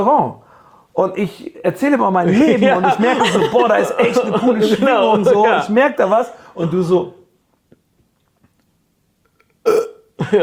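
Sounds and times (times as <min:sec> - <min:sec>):
speech: 0:00.0 - 0:00.4, 0:01.0 - 0:07.2, 0:10.3 - 0:10.4
laughter: 0:02.3 - 0:05.7
woman burping: 0:09.4 - 0:10.2.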